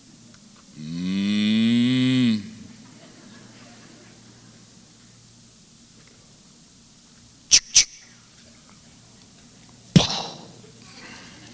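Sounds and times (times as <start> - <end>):
cow mooing: 0.7 - 2.8
laughter: 2.6 - 5.0, 10.3 - 11.5.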